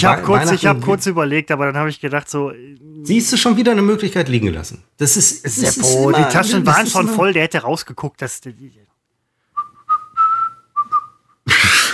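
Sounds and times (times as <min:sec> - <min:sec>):
speech: 0:00.0 - 0:08.9
noisy laughter: 0:05.5 - 0:07.2, 0:11.5 - 0:11.9
person whistling a short wavering tune: 0:09.6 - 0:11.2.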